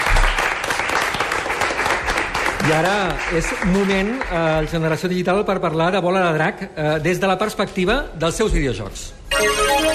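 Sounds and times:
audience applauding a guest on a live show: 0:00.0 - 0:05.0
speech: 0:02.7 - 0:09.8.

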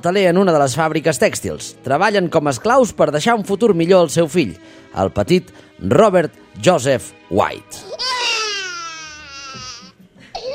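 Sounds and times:
speech: 0:00.0 - 0:08.2
baby crying: 0:07.8 - 0:10.5.

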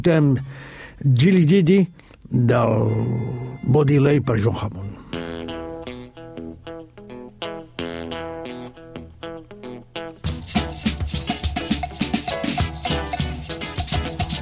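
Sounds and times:
speech: 0:00.0 - 0:05.0
full blues band playing: 0:05.0 - 0:14.4
shrill reedy blues harmonica playing a choppy riff: 0:10.2 - 0:14.4.

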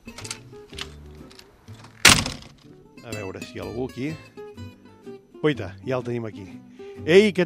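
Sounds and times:
door creaking open: 0:00.0 - 0:02.6
door thunk: 0:01.8 - 0:02.7
speech: 0:03.1 - 0:04.7, 0:05.4 - 0:07.4.

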